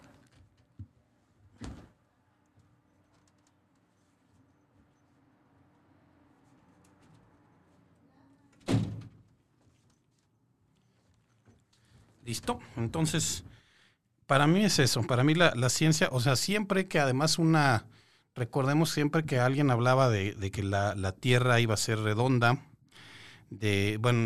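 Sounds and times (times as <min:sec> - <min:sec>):
door pulled shut with a solid thud: 0:01.6 - 0:02.0, 0:08.6 - 0:09.2
speech: 0:12.3 - 0:13.6, 0:14.3 - 0:22.7, 0:23.5 - 0:24.2.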